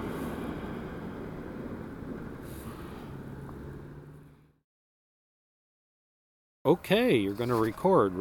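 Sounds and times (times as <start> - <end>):
car passing with broadband rumble and road hiss: 0.0 - 4.6
speech: 6.7 - 8.1.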